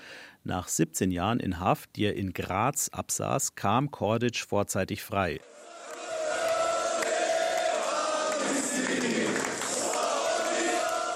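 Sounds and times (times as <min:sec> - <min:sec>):
speech: 0:00.4 - 0:05.7
hundreds of supporters cheering and shouting in an airport terminal in Zagreb: 0:05.4 - 0:11.1.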